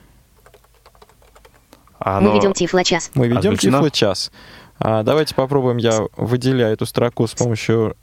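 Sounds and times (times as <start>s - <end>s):
low steady hum: 0.0s - 8.0s
typing on a computer keyboard in Notepad: 0.4s - 2.0s
speech: 2.0s - 8.0s.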